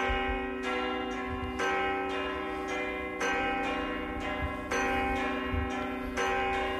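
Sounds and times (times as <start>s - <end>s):
church bells ringing to warn of storm: 0.0s - 6.7s.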